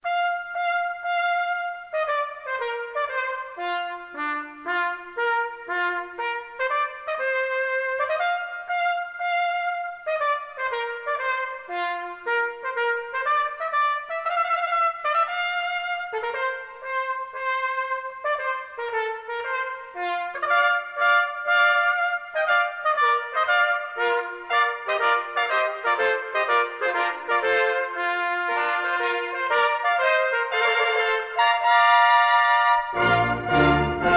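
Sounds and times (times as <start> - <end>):
trumpet trio playing: 0.0 - 34.1.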